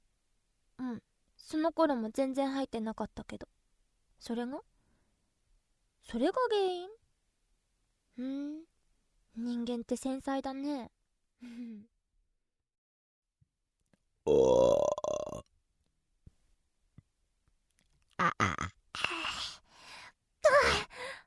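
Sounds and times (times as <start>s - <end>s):
speech: 0.9s - 3.6s, 4.2s - 4.7s, 6.0s - 7.0s, 8.2s - 8.7s, 9.4s - 11.9s, 14.3s - 15.1s
loud burp: 14.3s - 15.5s, 18.2s - 19.1s
gasping exhales: 19.0s - 20.1s.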